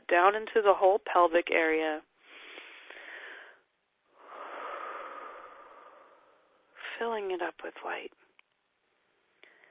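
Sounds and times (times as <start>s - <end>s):
speech: 0.1s - 2.1s, 7.0s - 8.2s
deep breath during a guided relaxation: 2.2s - 7.0s, 9.4s - 9.6s.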